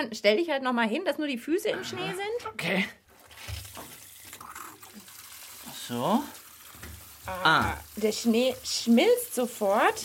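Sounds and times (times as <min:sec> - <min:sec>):
speech: 0:00.0 - 0:03.6, 0:05.9 - 0:06.4, 0:07.2 - 0:10.0
warm water pouring from a tap into a bathtub filled with snow: 0:03.2 - 0:10.0.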